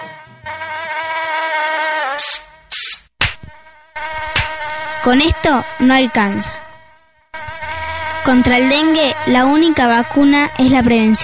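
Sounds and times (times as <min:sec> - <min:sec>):
mosquito buzzing: 0:00.8 - 0:10.6
bright hiss bursts: 0:02.2 - 0:03.4
speech: 0:05.0 - 0:06.6, 0:08.2 - 0:11.2.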